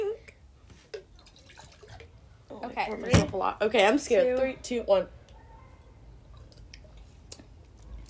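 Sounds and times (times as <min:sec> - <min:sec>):
pink drink poured into a cup: 0:01.0 - 0:02.2
speech: 0:02.8 - 0:05.2.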